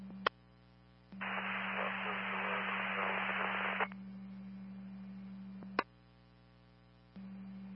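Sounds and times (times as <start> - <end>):
heavy radio static on a transmission: 1.2 - 3.9
sharp radio transmission clicks: 1.2 - 4.0
steady low hum: 1.2 - 5.8.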